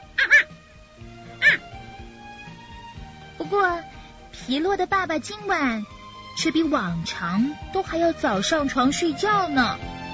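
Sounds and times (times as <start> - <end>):
dog barking at night in short high yips: 0.2 - 0.5, 1.4 - 1.6
speech: 3.5 - 3.9, 4.5 - 9.9.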